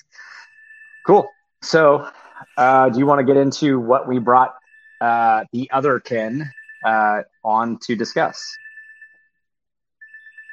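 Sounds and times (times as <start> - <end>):
phone ringing with a bright electronic trill: 0.0 - 9.4, 10.0 - 10.5
speech: 1.0 - 8.6.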